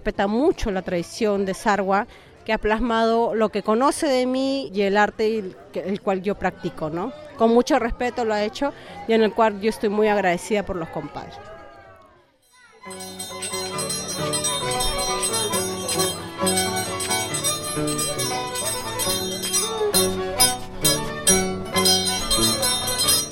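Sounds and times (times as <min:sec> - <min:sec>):
speech: 0:00.0 - 0:11.5
sustained tonal accompaniment: 0:12.8 - 0:23.2
steel blades of a traditional scissors dancer clanging at a celebration: 0:12.9 - 0:23.2.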